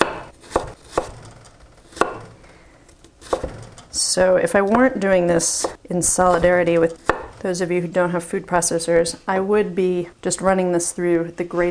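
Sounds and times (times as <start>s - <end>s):
knife slicing vegetables into thin matchstick strips on a board: 0.0s - 1.2s, 1.9s - 2.3s, 5.6s - 7.4s
speech: 4.0s - 11.6s.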